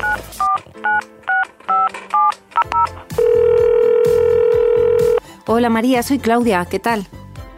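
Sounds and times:
crisp telephone keypad dialing beeps: 0.8 - 5.2
loud steady telephone line tone: 2.7 - 5.2
speech: 5.5 - 7.2.

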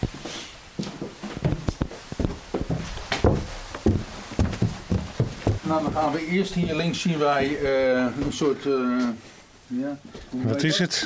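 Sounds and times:
footsteps climbing a staircase: 0.0 - 8.4
shuffling: 0.0 - 9.2
speech: 5.7 - 11.0.

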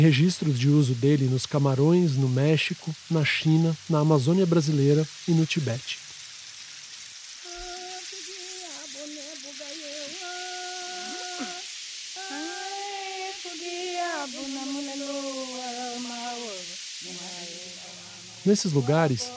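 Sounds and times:
speech: 0.0 - 6.0, 18.5 - 19.3
rainstick pouring out rain-like rattling hiss: 0.0 - 19.3.

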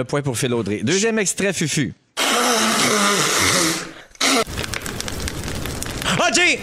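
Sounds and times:
speech: 0.0 - 2.0, 2.9 - 3.7, 6.4 - 6.6
person blowing nose: 2.2 - 4.5
fire crackling and snapping: 3.9 - 6.6.

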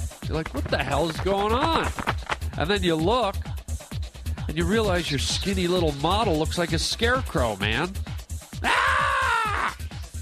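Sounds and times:
steady thumping low beat: 0.0 - 4.7
speech: 0.3 - 3.5, 4.5 - 8.8
person screaming in frustration: 8.6 - 9.9.

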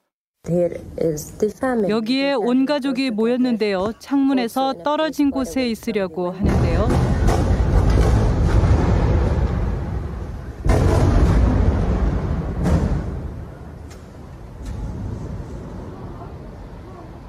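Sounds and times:
speech: 0.5 - 7.0
explosions from bombs falling in the Gaza Strip: 6.4 - 16.0.

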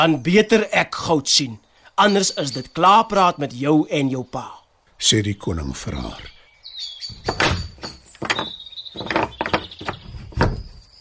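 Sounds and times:
speech: 0.0 - 6.4, 7.1 - 7.7
heavy wooden door knocks and rattles as it is shut and locked: 7.1 - 10.9
squeaky high-pitched door hinges creaking: 7.1 - 10.9.

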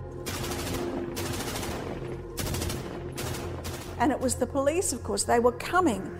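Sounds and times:
rapid bursts of automatic gunfire: 0.3 - 4.2
speech: 4.0 - 6.1.

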